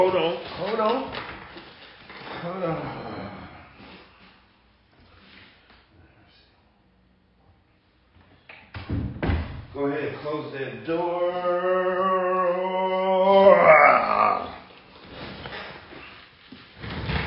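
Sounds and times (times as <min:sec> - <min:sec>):
speech: 0:00.0 - 0:01.3, 0:02.4 - 0:03.0, 0:10.3 - 0:11.6
faint room noise: 0:00.0 - 0:17.2
office door shutting with a dull thud: 0:08.7 - 0:09.7.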